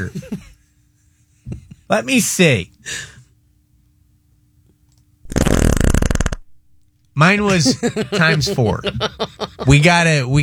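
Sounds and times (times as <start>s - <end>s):
speech: 0.0s - 0.5s, 1.9s - 3.1s, 7.2s - 10.4s
fart sound effect: 5.3s - 6.5s
laughter: 7.4s - 9.9s.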